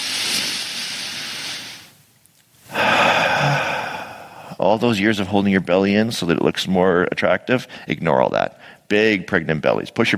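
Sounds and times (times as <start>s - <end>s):
deep breath drawn into the belly and exhaled: 0.0s - 2.0s, 2.6s - 4.6s
speech: 4.7s - 10.1s.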